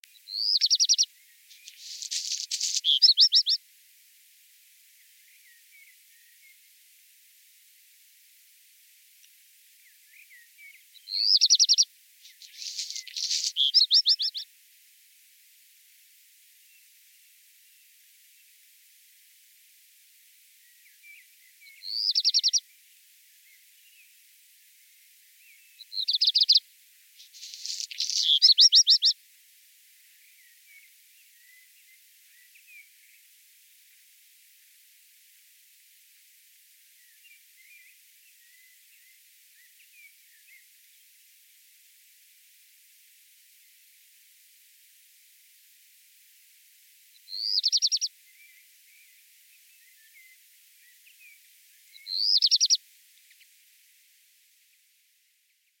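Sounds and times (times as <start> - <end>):
black redstart singing: 0.2 - 3.6, 10.1 - 14.4, 21.1 - 22.6, 25.8 - 26.6, 27.4 - 29.2, 47.3 - 48.1, 51.9 - 52.8.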